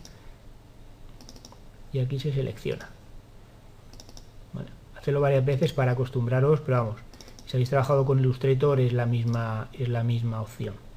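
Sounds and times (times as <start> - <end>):
computer mouse clicking in design software: 0.0 - 0.2, 1.1 - 1.6, 3.9 - 4.3, 7.1 - 7.7, 9.2 - 9.5
low hum: 0.0 - 10.9
speech: 1.9 - 3.0, 5.0 - 10.8.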